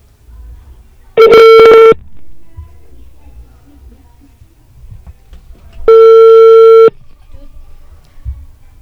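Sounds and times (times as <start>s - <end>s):
telephone ringback tone while placing a call: 1.2s - 2.0s, 5.9s - 6.9s.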